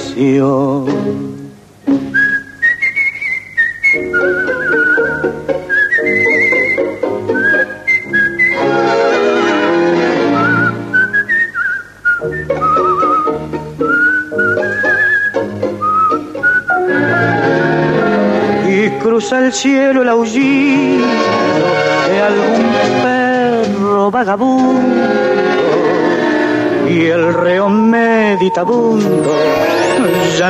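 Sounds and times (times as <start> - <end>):
speech: 0.2 - 2.1, 3.9 - 4.8, 19.1 - 21.4, 24.0 - 25.2, 26.9 - 30.4
person whistling a flowing melodic tune with sliding notes: 2.1 - 8.8, 10.3 - 18.3, 26.9 - 30.4
low musical accompaniment: 3.9 - 11.3, 12.2 - 30.4.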